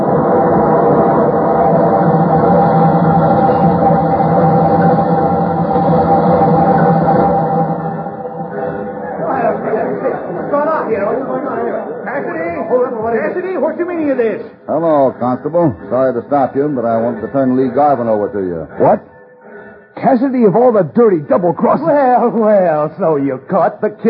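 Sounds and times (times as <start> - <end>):
steam train rumbling past onto a siding: 0.0 - 18.4
speech: 15.4 - 19.1, 20.0 - 24.0.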